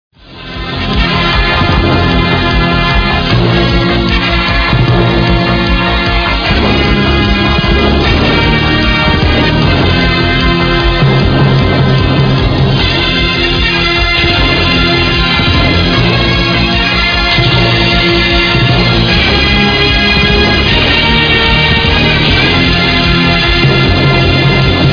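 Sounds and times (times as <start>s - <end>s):
entrance sound effect music: 0.2s - 24.9s.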